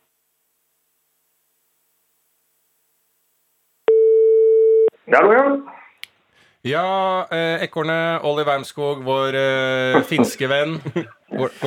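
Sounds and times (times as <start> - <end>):
telephone ringback tone: 3.9 - 4.9
speech: 5.1 - 5.7, 6.6 - 11.6
laughter: 9.7 - 11.6.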